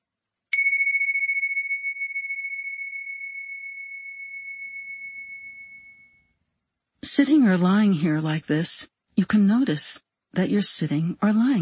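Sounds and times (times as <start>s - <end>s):
meditation bell ringing: 0.5s - 6.4s
speech: 7.2s - 11.5s.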